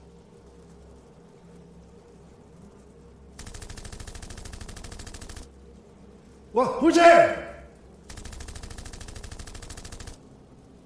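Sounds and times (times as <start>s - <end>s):
machine gun fire in a sustained automatic burst: 3.4s - 5.5s, 8.1s - 10.2s
speech: 6.6s - 7.5s.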